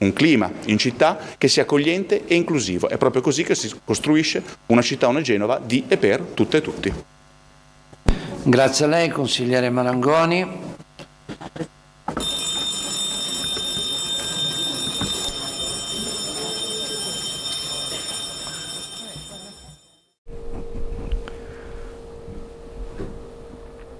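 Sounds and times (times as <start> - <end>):
speech: 0.0 - 7.2, 8.4 - 10.6
electric bell ringing in a city council chamber: 12.1 - 23.9.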